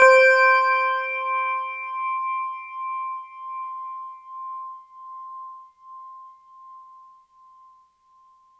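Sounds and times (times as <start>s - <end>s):
orchestral chimes playing C6: 0.0s - 1.5s.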